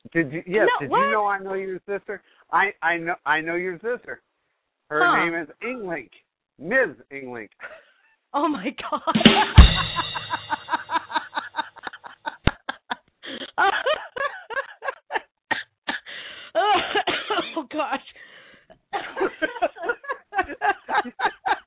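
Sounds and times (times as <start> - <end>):
speech: 0.1 - 4.3, 4.9 - 10.7, 17.6 - 18.2, 19.0 - 21.4
laughter: 8.9 - 15.2, 19.0 - 21.6
heavy repeated coughing: 16.7 - 17.7.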